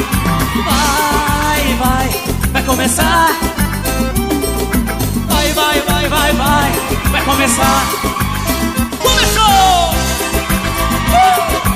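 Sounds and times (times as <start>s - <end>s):
rising whoop: 0.0s - 1.9s, 6.8s - 10.0s, 10.6s - 11.7s
audience shouting and cheering: 0.0s - 11.7s
speech: 2.8s - 3.5s, 7.3s - 8.2s.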